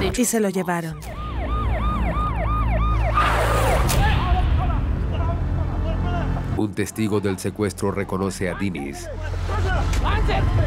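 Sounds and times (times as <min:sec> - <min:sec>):
speech: 0:00.0 - 0:01.2, 0:06.6 - 0:10.6
traffic noise: 0:00.0 - 0:10.6
ambulance siren wailing in rising-and-falling yelp: 0:00.2 - 0:04.0.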